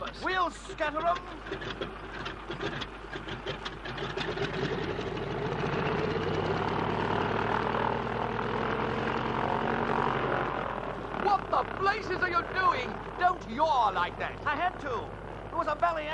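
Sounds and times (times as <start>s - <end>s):
cold aircraft engines starting and revving: 0.0s - 16.1s
speech: 0.1s - 4.9s, 11.8s - 16.1s.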